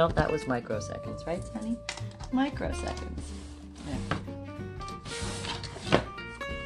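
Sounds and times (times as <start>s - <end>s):
speech: 0.0s - 4.1s
drawer full of fabric sliding shut: 3.8s - 6.1s.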